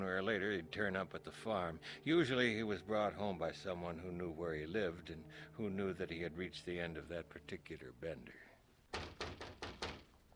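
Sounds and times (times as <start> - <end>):
speech: 0.0 - 8.5
firm knocking on a door: 8.9 - 10.2.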